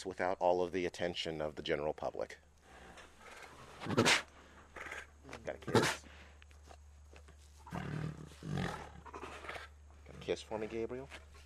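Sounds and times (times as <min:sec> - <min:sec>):
speech: 0:00.0 - 0:02.5, 0:03.8 - 0:04.3, 0:05.3 - 0:06.0, 0:10.3 - 0:11.3
tiger making rough breathy vocal bursts: 0:02.6 - 0:06.2, 0:07.6 - 0:09.7.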